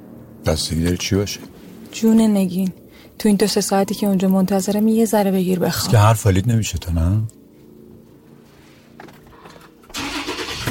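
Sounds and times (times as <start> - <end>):
speech: 0.5 - 7.4
black Land Cruiser SUV engine starting: 9.3 - 10.6.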